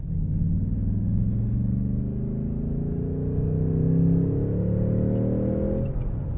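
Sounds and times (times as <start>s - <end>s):
V8 car engine accelerating in third gear: 0.0s - 6.3s.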